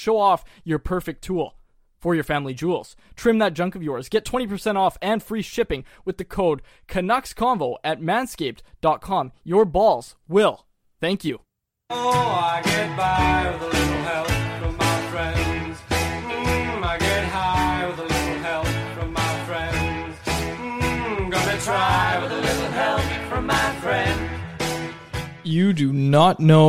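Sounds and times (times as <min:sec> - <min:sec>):
speech: 0:00.0 - 0:14.4, 0:25.5 - 0:26.6
rock song played from a studio soundboard: 0:11.9 - 0:25.2.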